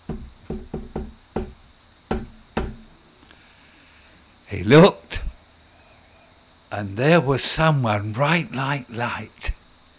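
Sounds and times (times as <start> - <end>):
knocking on a door: 0.0 - 2.9
speech: 4.5 - 5.0, 6.8 - 9.4.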